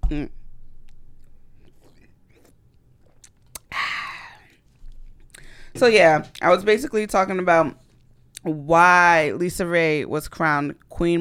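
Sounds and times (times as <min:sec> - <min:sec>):
speech: 0:00.1 - 0:00.4, 0:05.7 - 0:07.8, 0:08.4 - 0:11.1
person sipping a drink with faint wet slurps: 0:01.2 - 0:05.5
sharp mouth click: 0:03.5 - 0:03.8.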